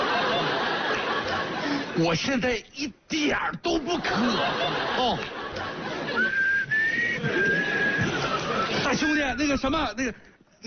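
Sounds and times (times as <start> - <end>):
laughter: 0.0 - 2.0, 3.8 - 9.2
speech: 2.0 - 6.3, 8.9 - 10.6
person whistling a high whistle inside an elevator: 6.2 - 8.8.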